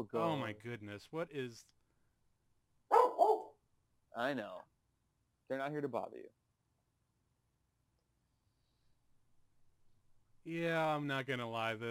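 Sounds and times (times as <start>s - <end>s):
speech: 0.0s - 1.8s, 4.2s - 4.7s, 5.5s - 6.4s, 10.4s - 11.8s
dog barking in studio with whine-like tail: 2.9s - 3.6s.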